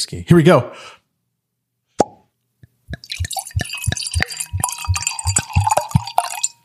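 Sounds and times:
speech: 0.0 - 1.0
wine pouring from a bottle into a glass: 2.9 - 6.6
glass clink: 3.0 - 6.6.

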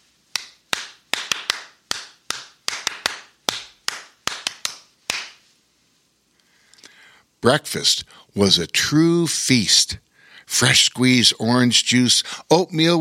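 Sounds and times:
person clapping hands: 0.3 - 5.5
speech: 7.4 - 13.0.

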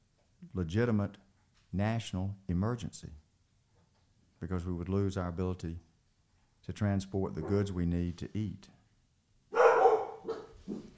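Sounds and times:
speech: 0.6 - 3.2, 4.4 - 5.9, 6.6 - 8.8
dog barking: 9.5 - 10.9.

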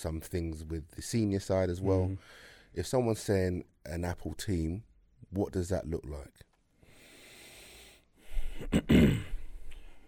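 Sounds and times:
speech: 0.0 - 6.5, 8.6 - 9.3
man clearing his throat: 8.6 - 9.4.

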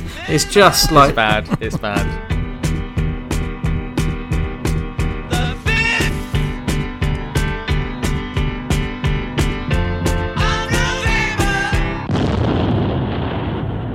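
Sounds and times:
speech: 0.2 - 2.3
laughter: 0.4 - 2.2
song with a steady pounding beat: 0.4 - 12.1
fake-sounding gunpowder explosion rumbling: 12.1 - 13.9.

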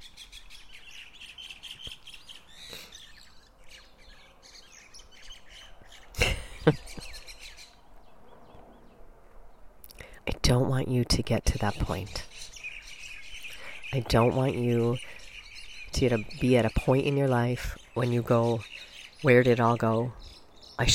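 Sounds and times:
mynas chirping and squabbling: 0.0 - 7.8, 11.5 - 20.4
speech: 10.8 - 12.3, 13.9 - 15.2, 16.0 - 20.2.

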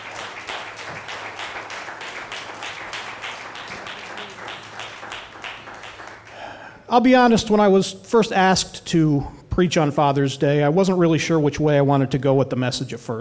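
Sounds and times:
audience clapping hands in praise: 0.0 - 6.6
speech: 6.9 - 13.2.

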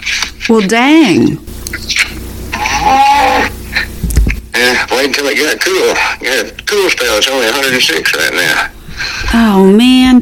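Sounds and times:
speech: 0.5 - 1.9, 2.9 - 3.5, 4.7 - 10.2
cow bawling at feeding time: 1.9 - 3.6.

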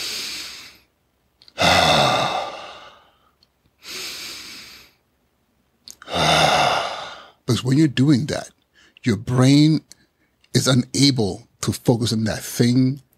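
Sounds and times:
slow deep breathing: 1.5 - 5.0, 6.0 - 7.4
speech: 7.5 - 10.0, 10.6 - 13.1.

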